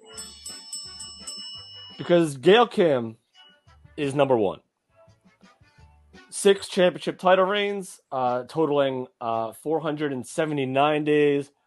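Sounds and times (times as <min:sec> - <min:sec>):
bell struck in quick succession: 0:00.0 - 0:02.6
speech: 0:02.0 - 0:03.2, 0:04.0 - 0:04.6, 0:06.3 - 0:11.6.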